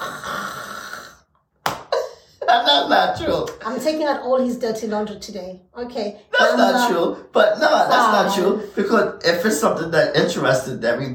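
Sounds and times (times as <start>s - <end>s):
voice mimicking a man snoring after falling asleep: 0.0s - 1.3s
speech: 2.5s - 11.1s.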